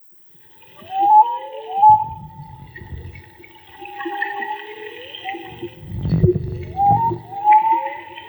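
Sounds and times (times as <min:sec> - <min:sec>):
underwater whale song whistled upsweeps via homemade hydrophone: 0:00.4 - 0:08.2
steady tonal drone: 0:00.5 - 0:08.2
whale deep rumbling moans: 0:01.7 - 0:08.2.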